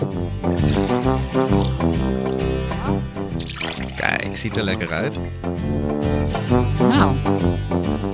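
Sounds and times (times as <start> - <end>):
water glugging from a bottle into a glass during a water tasting: 0.0 - 5.3
speech: 1.0 - 1.7, 4.4 - 8.1.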